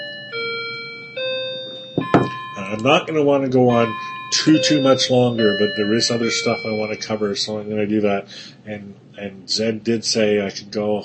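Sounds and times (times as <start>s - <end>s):
clock chiming: 0.0s - 7.8s
speech: 2.7s - 11.0s.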